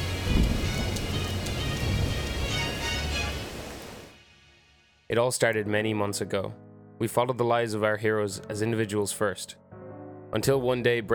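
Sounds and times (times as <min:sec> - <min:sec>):
deep rolling rumble of thunder: 0:00.0 - 0:04.1
heavy rain hissing: 0:00.0 - 0:04.3
speech: 0:05.1 - 0:09.7, 0:10.3 - 0:11.1.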